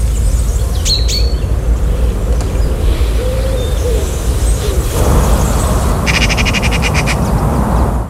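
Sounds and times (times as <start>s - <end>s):
bird chirps: 0.0s - 7.4s
common chaffinch singing a rattling trill: 0.0s - 7.4s
steady rushing outdoor background: 0.0s - 8.0s.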